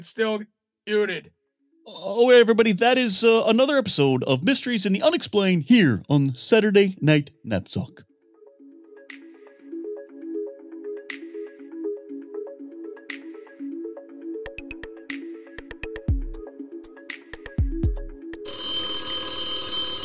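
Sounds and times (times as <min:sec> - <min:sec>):
speech: 0:00.0 - 0:08.1
phone ringing with a repeating electronic melodic ringtone: 0:18.4 - 0:20.0.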